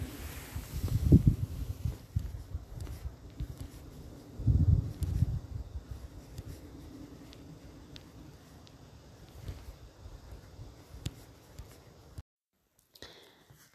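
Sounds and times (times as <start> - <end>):
wind gusts rumbling: 0.0 - 11.0
steady rustle of leaves: 0.0 - 11.9
faint city hum: 0.0 - 12.2.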